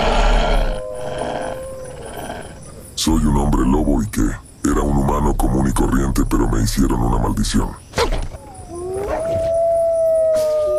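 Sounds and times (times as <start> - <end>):
single wolf howling: 0.0 - 2.9, 8.4 - 10.7
speech: 3.0 - 7.8.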